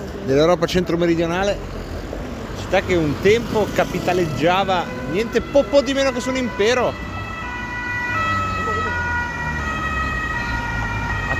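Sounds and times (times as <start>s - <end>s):
dense street traffic noise: 0.0s - 11.3s
speech: 0.3s - 1.8s, 2.6s - 7.1s
police motorcycle siren wailing: 3.9s - 11.3s.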